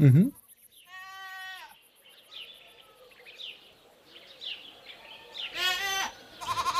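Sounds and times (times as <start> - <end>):
speech: 0.0 - 0.4
farmyard ambience: 0.0 - 6.7
goat bleating at a mountain goat farm at the foot of a volcano: 0.9 - 1.7, 5.5 - 6.7.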